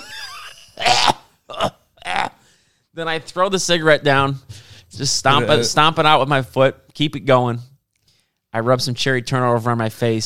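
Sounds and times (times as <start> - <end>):
person imitating harsh coughing while smoking a cigarette: 0.8 - 2.4
speech: 3.0 - 7.7, 8.5 - 10.2.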